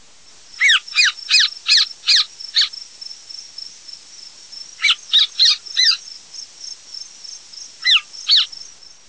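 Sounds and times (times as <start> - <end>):
elf owl calling: 0.6 - 2.7, 4.8 - 6.1, 7.8 - 8.6.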